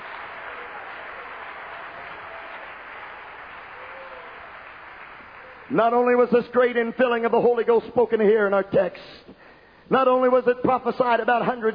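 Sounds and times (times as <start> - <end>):
congregation clapping hands: 0.0 - 6.6
speech: 5.7 - 11.7.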